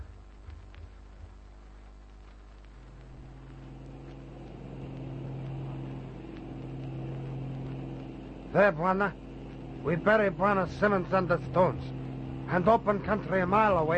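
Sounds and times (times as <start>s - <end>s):
aeroplane engine droning in flight: 2.8s - 13.9s
speech: 8.6s - 9.2s, 9.8s - 13.9s.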